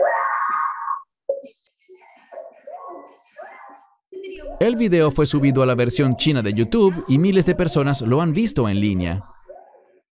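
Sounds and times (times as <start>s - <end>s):
woman's loud scream: 0.0s - 1.1s
speech: 4.6s - 9.4s.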